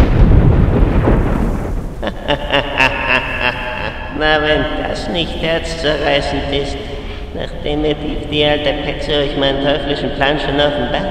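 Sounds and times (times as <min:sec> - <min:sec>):
loud deep thunder rumbling: 0:00.0 - 0:11.0
low noise: 0:01.8 - 0:11.0
laughter: 0:02.0 - 0:11.0
speech: 0:04.2 - 0:11.0.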